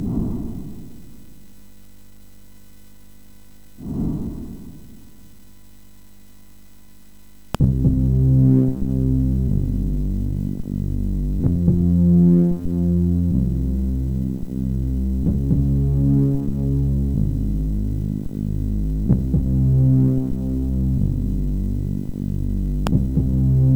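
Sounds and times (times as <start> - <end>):
MOS6581 chiptune synth music: 7.6 - 23.7.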